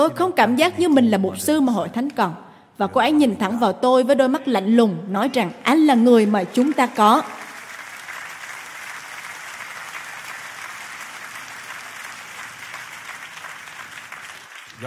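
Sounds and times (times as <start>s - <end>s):
speech: 0.0s - 7.4s
audience applauding a pastor: 6.2s - 14.8s.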